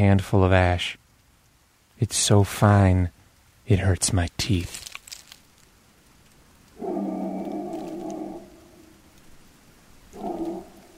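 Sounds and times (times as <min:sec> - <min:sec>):
speech: 0:00.0 - 0:01.0, 0:02.0 - 0:04.8
soft hissing background: 0:00.0 - 0:10.9
man howling: 0:06.8 - 0:09.0, 0:10.1 - 0:10.9.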